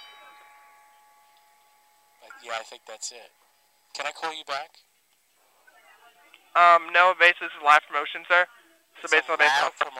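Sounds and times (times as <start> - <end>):
faint doorbell chime: 0.0 - 2.6
speech: 2.4 - 3.4, 4.0 - 4.9, 6.6 - 9.9.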